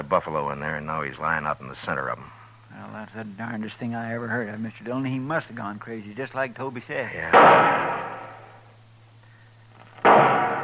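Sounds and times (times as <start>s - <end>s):
speech: 0.0s - 8.1s
rifle gunshots fired by a man lying among slain buffalo: 7.4s - 8.5s.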